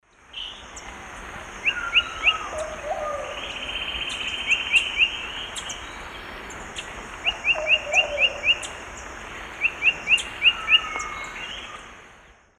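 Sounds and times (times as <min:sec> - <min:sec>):
Legatus leucophaius slow alternate song: 0:00.1 - 0:00.9, 0:01.6 - 0:12.5.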